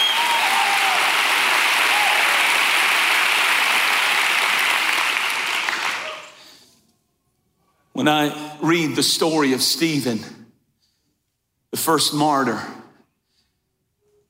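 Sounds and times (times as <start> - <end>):
large crowd at a sermon applauding: 0.0 - 6.5
speech: 8.0 - 10.4, 11.8 - 12.8.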